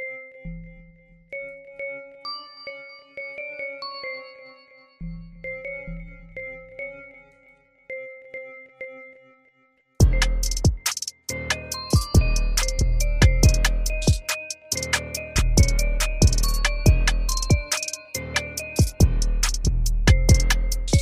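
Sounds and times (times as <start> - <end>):
synthesized bell melody played on a software synth: 0.0 - 21.0
deep bass tones: 10.0 - 10.8, 12.1 - 14.2, 15.4 - 17.6, 19.0 - 21.0.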